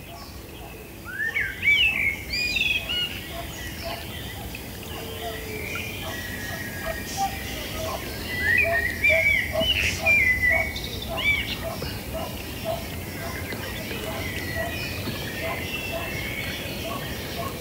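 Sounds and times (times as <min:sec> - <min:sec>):
blackbird singing fluting warbling phrases: 0:00.0 - 0:17.5
quieter chirps: 0:00.0 - 0:17.5.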